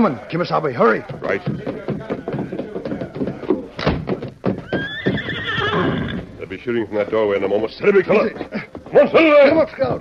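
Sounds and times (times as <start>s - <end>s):
speech: 0.0s - 2.0s, 6.6s - 9.9s
horse hooves clip-clopping: 0.0s - 9.9s
horse neighing: 4.6s - 6.4s.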